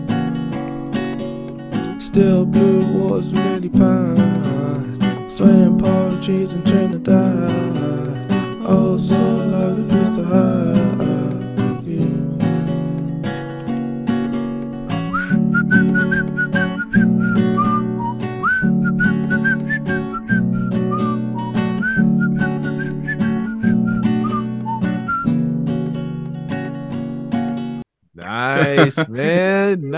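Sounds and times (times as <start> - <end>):
steady strummed chords with rhythmic backing: 0.0 - 29.9
speech: 2.0 - 11.1
bright whistled melody harmonized in two parts: 14.9 - 25.5
laughter: 28.2 - 29.9.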